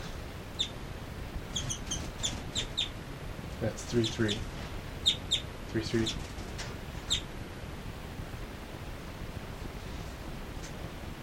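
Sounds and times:
birds chirping: 0:00.0 - 0:07.4
steady hiss: 0:00.0 - 0:11.2
speech: 0:03.6 - 0:04.6, 0:05.7 - 0:06.3.

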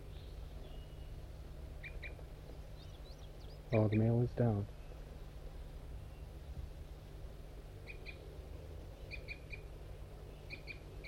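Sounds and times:
wild birds giving brief high flight calls: 0:00.0 - 0:05.1, 0:07.6 - 0:11.0
steady low rumbling noise: 0:00.0 - 0:11.0
speech: 0:03.7 - 0:04.8.

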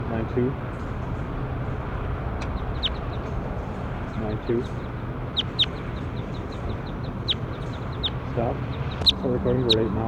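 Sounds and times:
low steady noise: 0:00.0 - 0:10.0
speech: 0:00.3 - 0:00.9, 0:04.2 - 0:05.0, 0:08.4 - 0:10.0
circling bird chirping: 0:00.7 - 0:10.0
soft repeated chirps: 0:02.4 - 0:03.4, 0:04.1 - 0:09.8.

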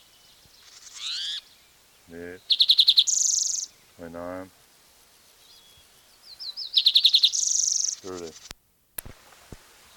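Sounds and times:
bird cry: 0:00.0 - 0:01.6, 0:02.4 - 0:03.9, 0:05.4 - 0:08.5
speech: 0:02.1 - 0:02.6, 0:04.0 - 0:04.6, 0:08.0 - 0:08.6.

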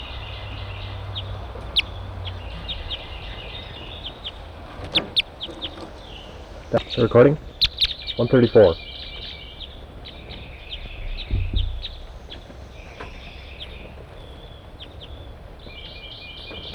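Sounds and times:
crossbills giving short sharp chips on a cottage chimney: 0:00.0 - 0:16.7
low rumbling background noise: 0:00.0 - 0:16.7
speech: 0:06.7 - 0:07.5, 0:08.2 - 0:08.9.

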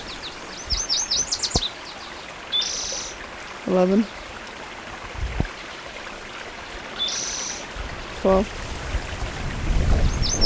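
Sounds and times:
warbler singing: 0:00.0 - 0:04.2, 0:07.0 - 0:08.6, 0:09.5 - 0:10.4
faint steady hiss: 0:00.0 - 0:10.4
speech: 0:03.6 - 0:04.2, 0:08.2 - 0:08.6.

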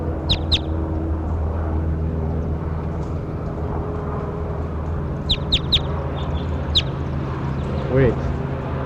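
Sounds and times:
bird giving short sharp high calls: 0:00.0 - 0:00.8, 0:05.2 - 0:07.0
steady low mechanical rumble: 0:00.0 - 0:08.8.

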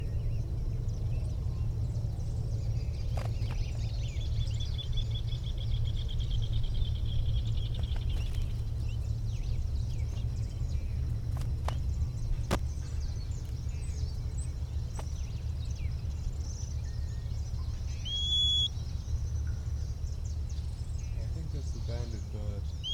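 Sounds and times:
soft bird chirps: 0:00.0 - 0:22.9
steady low rumble of outdoor noise: 0:00.0 - 0:22.9
bird giving a brief thin whistle: 0:17.1 - 0:18.8, 0:22.7 - 0:22.9.

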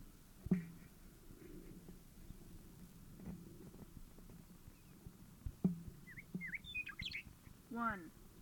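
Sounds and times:
speech: 0:00.5 - 0:00.7, 0:07.8 - 0:08.2
bird chirps: 0:06.0 - 0:07.3.

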